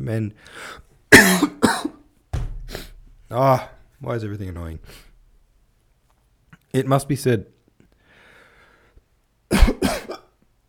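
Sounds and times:
speech: 0:00.0 - 0:01.9, 0:03.3 - 0:05.1, 0:06.7 - 0:07.6
person coughing: 0:01.1 - 0:02.0, 0:09.5 - 0:10.4.

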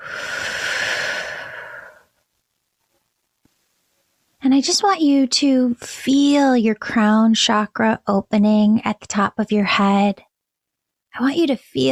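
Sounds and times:
deep breath during a guided meditation: 0:00.0 - 0:02.2
speech: 0:04.6 - 0:10.3, 0:11.1 - 0:11.9.

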